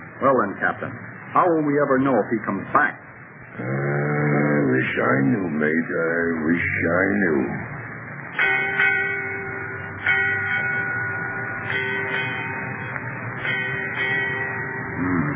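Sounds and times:
speech: 0:00.2 - 0:03.0, 0:03.6 - 0:03.9, 0:04.7 - 0:07.7
ship's bell striking eight bells: 0:08.3 - 0:15.3.

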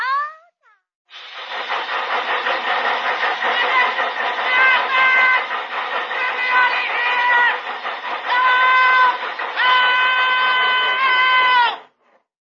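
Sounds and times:
fat-melting machine humming: 0:01.1 - 0:11.1.

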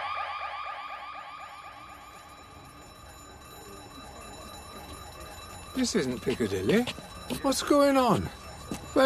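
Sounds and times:
smoke alarm shrieking with a warbling tone: 0:00.0 - 0:09.0
speech: 0:05.8 - 0:08.4.

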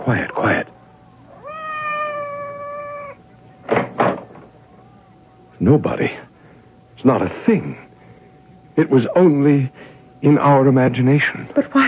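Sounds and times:
speech: 0:00.1 - 0:00.7, 0:05.6 - 0:06.3, 0:07.0 - 0:07.8, 0:08.8 - 0:11.8
cat meowing outside a door: 0:01.3 - 0:03.2.

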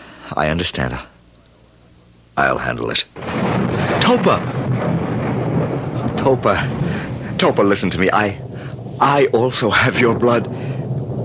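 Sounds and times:
speech: 0:00.3 - 0:01.1, 0:02.4 - 0:05.0, 0:06.2 - 0:06.8, 0:07.4 - 0:10.7
thunder rumbling: 0:03.2 - 0:11.2.

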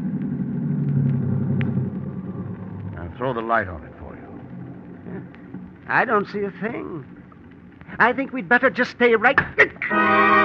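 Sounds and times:
car engine rumbling as the car pulls up and stops: 0:00.0 - 0:08.0
speech: 0:03.2 - 0:04.0, 0:05.1 - 0:07.2, 0:07.9 - 0:10.2.

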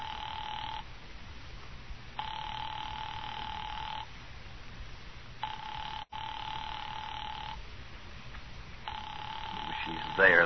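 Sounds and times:
telephone ringing on an unanswered operator-placed call: 0:00.0 - 0:00.8, 0:02.2 - 0:04.1, 0:05.4 - 0:07.6, 0:08.9 - 0:10.4
faint hiss: 0:00.0 - 0:10.4
speech: 0:10.2 - 0:10.4.

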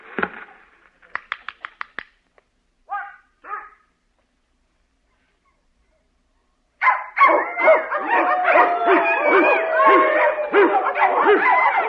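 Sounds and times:
dog barking excitedly: 0:02.9 - 0:03.9, 0:06.8 - 0:11.8.

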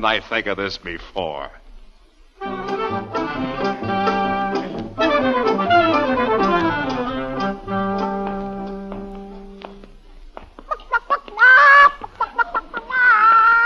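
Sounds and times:
speech: 0:00.0 - 0:01.6
music: 0:02.4 - 0:10.0
live chicken clucking and squawking: 0:10.6 - 0:13.6.

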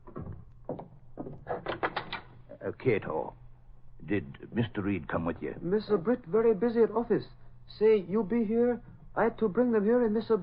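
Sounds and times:
dull thumps of a door being opened: 0:00.0 - 0:01.9
door clicks: 0:00.1 - 0:02.4
speech: 0:02.6 - 0:03.4, 0:04.0 - 0:10.4.

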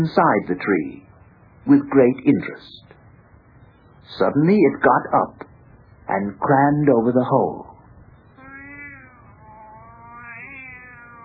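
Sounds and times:
speech: 0:00.0 - 0:01.0, 0:01.6 - 0:02.9, 0:04.1 - 0:05.5, 0:06.1 - 0:07.6
white tomcat in an ash tree meowing: 0:08.3 - 0:11.2.

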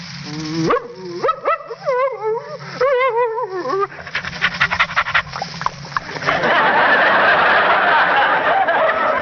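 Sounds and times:
person imitating dog yips and whimpers: 0:00.4 - 0:04.0
person imitating dog panting and huffing: 0:03.9 - 0:05.5
laughter: 0:06.0 - 0:09.2.

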